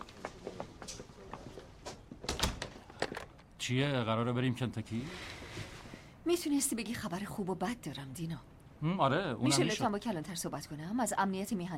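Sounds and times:
low steady hum: 0:00.0 - 0:11.7
door closing: 0:02.2 - 0:03.5
speech: 0:03.7 - 0:05.3, 0:06.3 - 0:11.7.

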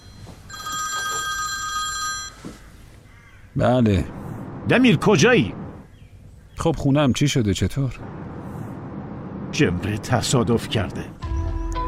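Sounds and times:
telephone ringing with electronic tones: 0:00.0 - 0:02.7
speech: 0:03.6 - 0:05.6, 0:06.6 - 0:08.1, 0:09.6 - 0:11.2.

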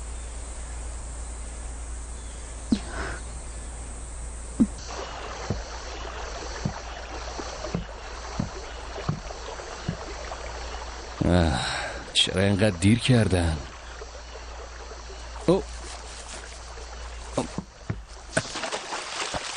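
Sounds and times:
faint insect hum: 0:00.0 - 0:19.5
steady water noise: 0:00.0 - 0:19.5
speech: 0:02.7 - 0:03.0, 0:11.4 - 0:13.7
rowboat oar splashes and knocks: 0:04.7 - 0:11.2, 0:13.6 - 0:19.5.

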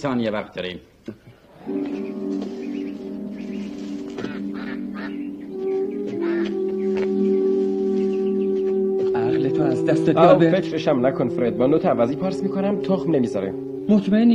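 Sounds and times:
speech: 0:00.0 - 0:02.4, 0:09.8 - 0:14.3
duck quacking: 0:01.5 - 0:08.8.

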